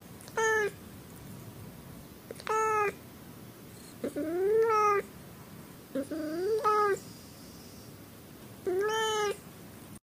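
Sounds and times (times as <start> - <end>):
cat meowing sadly: 0.3 - 0.8, 2.4 - 3.0, 4.0 - 5.1, 6.0 - 7.0, 8.7 - 9.4.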